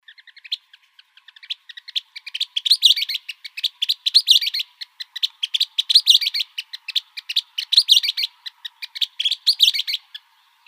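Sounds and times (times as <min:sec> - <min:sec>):
Western kingbird calling in Arizona: 0:00.0 - 0:10.6.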